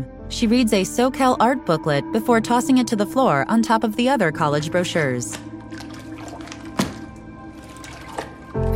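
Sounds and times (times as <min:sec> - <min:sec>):
speech: 0:00.0 - 0:05.8
water sloshing in a bathtub as a teenage girl submerges her head: 0:05.3 - 0:08.6.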